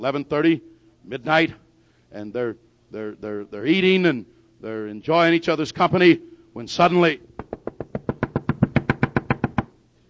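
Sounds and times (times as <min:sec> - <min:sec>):
speech: 0:00.0 - 0:07.3
firm knocking on a door: 0:07.4 - 0:09.7.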